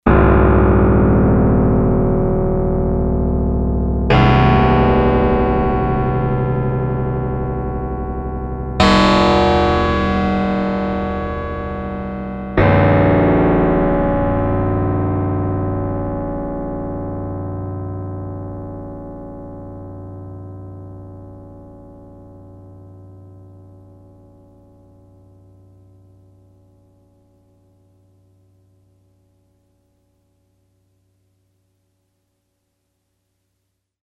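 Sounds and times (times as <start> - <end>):
synthesized gong on a Yamaha TX802: 0.1 - 22.9.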